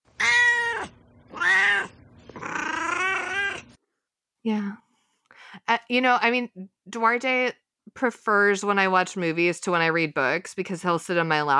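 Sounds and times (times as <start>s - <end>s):
cat meowing: 0.2s - 3.7s
speech: 4.4s - 4.8s, 5.7s - 11.5s.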